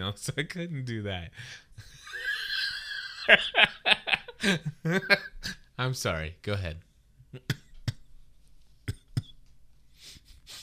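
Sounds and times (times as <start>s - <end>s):
speech: 0.1s - 1.9s, 3.3s - 7.6s
person with bronchitis coughing harshly: 8.9s - 9.4s.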